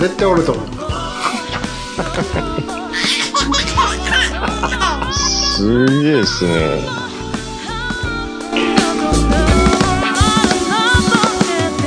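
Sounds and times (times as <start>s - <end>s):
speech: 0.0s - 0.8s, 2.2s - 2.6s, 5.6s - 7.0s
music playing: 0.0s - 11.8s
baby laughing: 1.2s - 6.5s.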